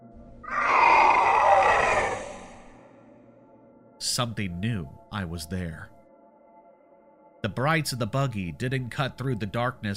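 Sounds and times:
distant scream echoing off cave walls: 0:00.3 - 0:02.9
speech: 0:04.1 - 0:06.0, 0:07.4 - 0:09.9.

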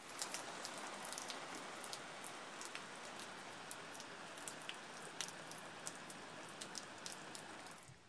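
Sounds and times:
heavy rain falling on a waterlogged garden: 0:00.0 - 0:08.0
sharper rain drips and splashes: 0:00.0 - 0:08.0.

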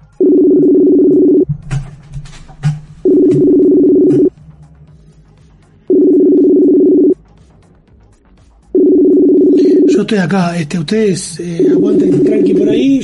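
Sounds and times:
telephone ringback tones over a computer connection: 0:00.0 - 0:01.5, 0:03.0 - 0:04.3, 0:05.9 - 0:07.2, 0:08.8 - 0:10.1, 0:11.6 - 0:13.0
speech: 0:10.0 - 0:13.0.

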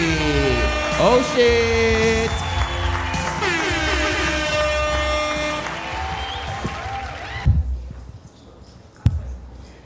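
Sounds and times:
live audience applauding: 0:00.0 - 0:07.5
speech: 0:01.0 - 0:02.4
audience whoops and cheering: 0:02.0 - 0:04.0, 0:05.6 - 0:07.6.

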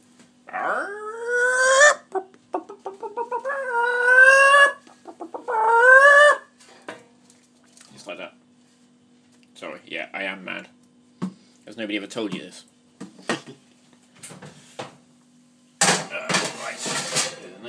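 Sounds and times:
chicken clucking: 0:00.6 - 0:06.4
speech: 0:11.9 - 0:12.7.

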